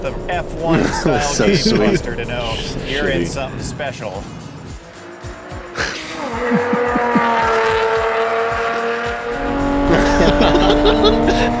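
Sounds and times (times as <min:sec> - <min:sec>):
speech: 0:00.0 - 0:04.4, 0:10.2 - 0:11.5
laughter: 0:00.6 - 0:03.4, 0:05.8 - 0:07.8, 0:09.8 - 0:11.5
sports car with rear-mounted V12 engine revving through gear changes: 0:04.4 - 0:11.5.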